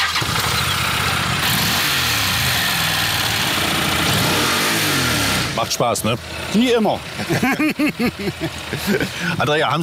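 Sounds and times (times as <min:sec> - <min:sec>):
Honda NC750X motorcycle engine starting and revving: 0:00.0 - 0:07.4
speech: 0:05.7 - 0:09.8
laughter: 0:07.2 - 0:09.5.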